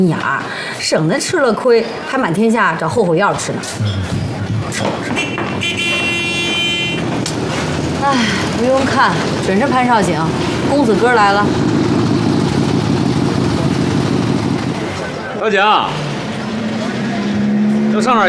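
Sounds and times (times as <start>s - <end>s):
speech: 0.0s - 5.8s, 8.0s - 11.8s, 15.4s - 16.0s, 18.0s - 18.2s
motorcycle with a new German part idling and revving: 3.7s - 18.2s
horn honking: 3.9s - 7.2s.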